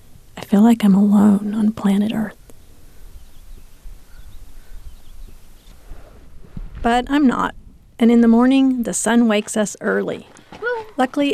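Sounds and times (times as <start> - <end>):
soft low rumble of noise: 0.0 - 8.9
speech: 0.5 - 2.4, 6.8 - 10.4, 11.0 - 11.3
faint bird calls at night in the desert: 2.4 - 5.8.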